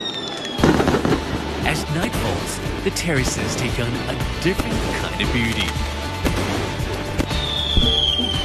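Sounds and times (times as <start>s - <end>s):
thin high firework whistle gliding downward: 0.0s - 0.7s, 7.4s - 8.4s
fireworks bursts: 0.0s - 8.4s
speech: 2.0s - 6.0s.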